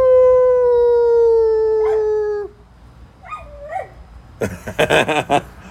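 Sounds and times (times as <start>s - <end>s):
dog howling: 0.2s - 2.6s
dog yipping: 1.8s - 2.1s, 3.2s - 4.0s
dog whining: 1.8s - 2.6s, 3.2s - 4.0s
laughter: 4.4s - 5.6s.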